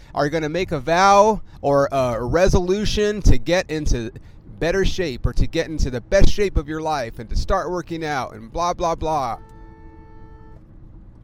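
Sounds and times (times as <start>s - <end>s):
low rumble of road noise inside a moving car: 0.0s - 11.2s
speech: 0.2s - 9.5s
car horn honk: 8.5s - 11.0s.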